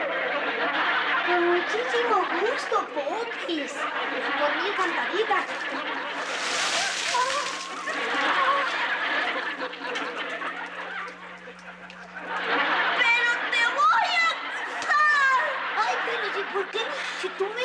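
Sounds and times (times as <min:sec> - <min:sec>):
laughter: 0:00.0 - 0:17.6
people talking and snickering: 0:00.0 - 0:17.6
speech: 0:01.3 - 0:06.3, 0:16.4 - 0:17.6
thrown water splashing: 0:06.1 - 0:12.5.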